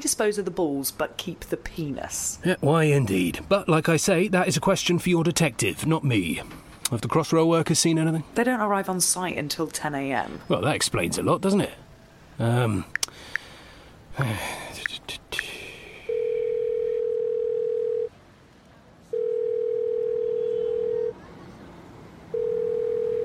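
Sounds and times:
speech: 0:00.0 - 0:11.8, 0:12.4 - 0:13.3, 0:14.2 - 0:15.2
breathing: 0:13.1 - 0:14.8, 0:15.4 - 0:16.5
telephone ringing tone: 0:16.1 - 0:18.1, 0:19.1 - 0:21.2, 0:22.3 - 0:23.2.

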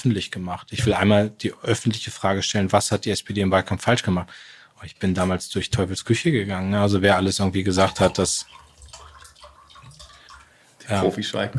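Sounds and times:
speech: 0:00.0 - 0:08.6, 0:10.9 - 0:11.5
drink pouring into a glass: 0:07.7 - 0:10.5.

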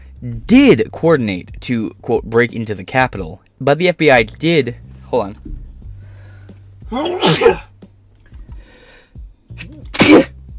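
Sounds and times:
speech: 0:00.2 - 0:05.6, 0:06.9 - 0:07.7
sharp inhale before sneezing: 0:06.0 - 0:06.7, 0:08.4 - 0:09.2
loud sneezes: 0:06.9 - 0:07.7, 0:09.5 - 0:10.4.

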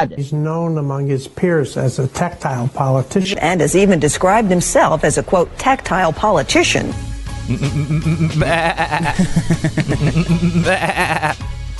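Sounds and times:
speech: 0:00.0 - 0:11.5
laughter: 0:07.5 - 0:11.4
several sheep bleating: 0:10.6 - 0:11.4.

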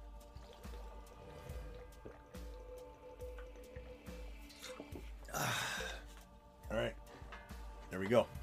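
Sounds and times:
water sloshing in a large bottle: 0:00.2 - 0:05.3
person chugging water from a large bottle: 0:00.2 - 0:06.1
speech: 0:05.4 - 0:05.8, 0:08.0 - 0:08.4.

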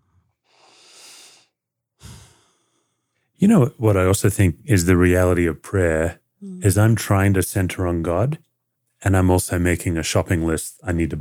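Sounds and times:
slow deep breath drawn in: 0:00.0 - 0:03.3
speech: 0:03.4 - 0:11.1.

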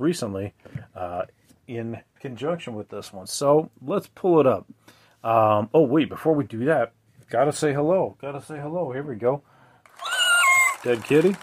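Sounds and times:
speech: 0:00.0 - 0:09.5, 0:10.8 - 0:11.4
drawn-out high-pitched cat meow: 0:10.0 - 0:10.8.

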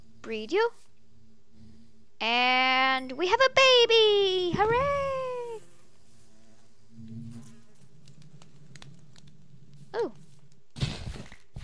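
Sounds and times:
speech: 0:00.2 - 0:00.9, 0:02.2 - 0:05.1, 0:10.0 - 0:10.2
bees buzzing around flowers: 0:03.0 - 0:10.4
faint clicks and rustles: 0:05.9 - 0:11.6.

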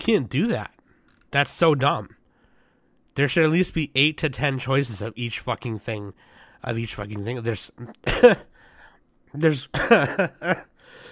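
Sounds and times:
speech: 0:00.0 - 0:02.2, 0:03.2 - 0:08.5, 0:09.3 - 0:10.7
throaty coughs: 0:08.0 - 0:08.5, 0:09.7 - 0:10.7.

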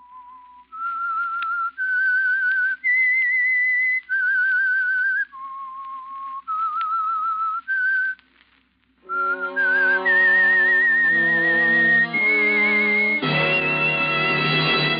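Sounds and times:
lone whistler whistling a slow eerie melody: 0:00.0 - 0:08.2, 0:09.0 - 0:14.9
full orchestra playing rich sustained chords: 0:09.1 - 0:14.9.

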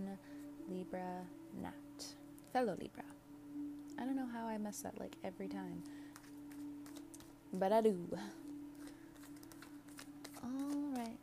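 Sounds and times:
speech: 0:00.0 - 0:03.2, 0:04.0 - 0:06.0, 0:07.5 - 0:08.4, 0:10.4 - 0:11.2
steady low electrical hum: 0:00.0 - 0:11.2
Rider-Waite tarot deck being shuffled: 0:05.8 - 0:07.7, 0:08.4 - 0:11.2.

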